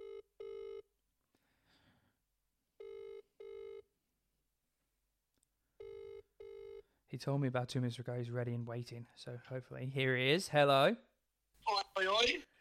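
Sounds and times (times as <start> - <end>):
phone outgoing ringback tone in paired electronic bursts: 0.0 - 0.8, 2.8 - 3.8, 5.8 - 6.8
speech: 7.2 - 11.1, 12.0 - 12.5.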